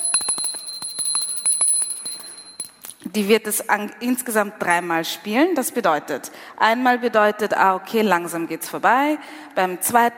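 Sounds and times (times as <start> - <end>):
hand bell ringing rapidly: 0.0 - 2.8
speech: 3.1 - 10.1.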